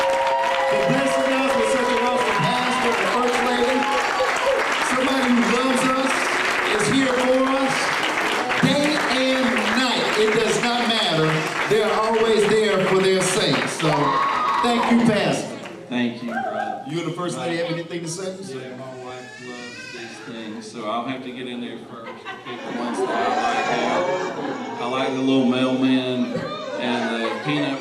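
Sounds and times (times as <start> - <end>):
audience clapping: 0.0 - 16.4
overlapping voices and cheering from the crowd: 0.0 - 18.1, 22.5 - 27.7
speech: 20.2 - 23.8, 25.1 - 27.7
laughter: 21.7 - 27.7.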